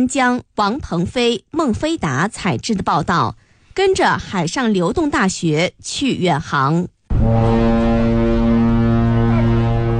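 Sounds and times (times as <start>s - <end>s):
speech: 0.0s - 7.7s
Chinese navy training ship horn blaring as ship leaves dock: 7.1s - 9.9s.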